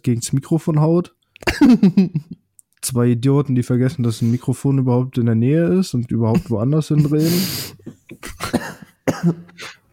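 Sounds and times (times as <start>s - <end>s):
speech: 0.0s - 9.7s
harsh coughing: 1.4s - 1.8s, 7.0s - 9.8s
laughter: 6.4s - 8.4s.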